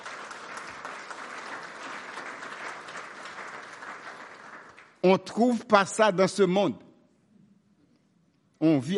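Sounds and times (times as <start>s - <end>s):
crowd applause: 0.0s - 5.0s
speech: 5.0s - 6.8s, 8.6s - 8.9s.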